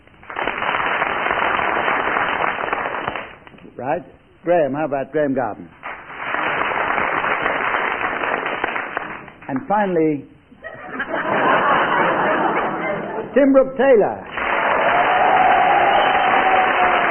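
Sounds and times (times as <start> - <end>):
large studio audience applauding a contestant's tie-tying: 0.2 - 3.4, 5.8 - 9.7, 14.3 - 17.0
speech: 3.8 - 5.8, 9.5 - 11.0, 13.3 - 14.3
laughter: 10.6 - 13.4.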